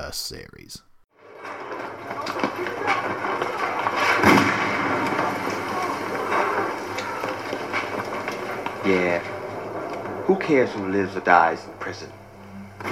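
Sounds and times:
speech: 0:00.1 - 0:00.9, 0:08.8 - 0:09.3, 0:10.3 - 0:12.2
gunshots: 0:01.4 - 0:10.3.

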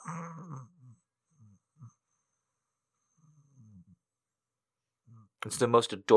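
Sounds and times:
voice imitating a cat's tiny snore: 0:00.0 - 0:01.0
speech: 0:05.4 - 0:06.1.

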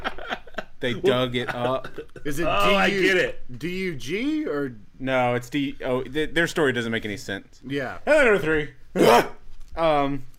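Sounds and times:
laughter: 0:00.0 - 0:02.5
speech: 0:00.8 - 0:10.3
person imitating a dog bark: 0:09.0 - 0:09.4.

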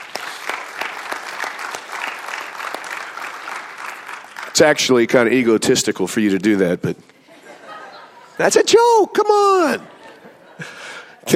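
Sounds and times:
sharp individual claps: 0:00.0 - 0:04.6
audience applauding: 0:00.0 - 0:05.1
speech: 0:04.6 - 0:07.1, 0:08.4 - 0:09.9
laughter: 0:07.2 - 0:08.6, 0:09.4 - 0:11.3.

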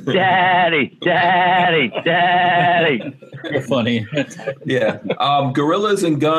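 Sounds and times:
goat bleating: 0:00.0 - 0:03.1
laughter: 0:00.0 - 0:05.8
speech: 0:00.0 - 0:06.3.

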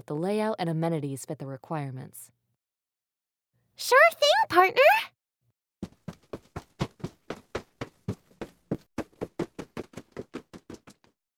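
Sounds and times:
speech: 0:00.0 - 0:02.4, 0:03.8 - 0:05.2
quick running footsteps: 0:05.8 - 0:11.2.

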